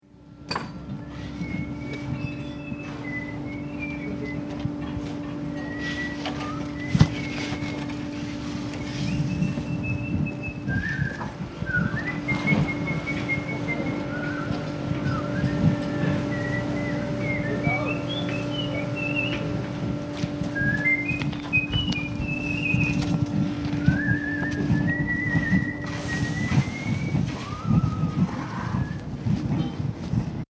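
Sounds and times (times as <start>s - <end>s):
construction site noise: 0.0s - 30.4s
person whistling at a construction site: 1.1s - 4.5s, 5.6s - 8.0s, 8.8s - 19.4s, 20.6s - 23.1s, 23.8s - 29.1s.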